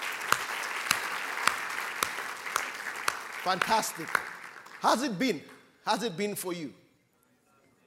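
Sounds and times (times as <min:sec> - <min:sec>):
audience applause: 0:00.0 - 0:05.5
speech: 0:03.4 - 0:06.8.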